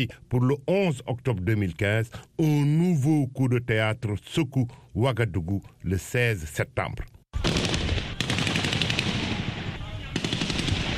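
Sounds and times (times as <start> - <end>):
speech: 0.0 - 7.1
rapid automatic gunfire during a coup in Ouagadougou: 7.4 - 10.9.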